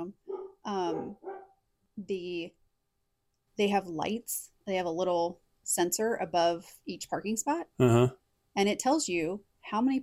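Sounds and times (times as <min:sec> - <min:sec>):
family's pet dog barking at home: 0:00.3 - 0:01.6
speech: 0:00.7 - 0:01.2, 0:02.1 - 0:02.6, 0:03.6 - 0:10.0.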